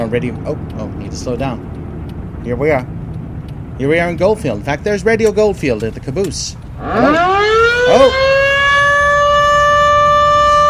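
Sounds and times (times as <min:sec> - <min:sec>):
speech: 0:00.1 - 0:01.8, 0:02.4 - 0:03.0, 0:03.8 - 0:08.4
noon siren wailing at midday in a mining town: 0:06.8 - 0:10.6.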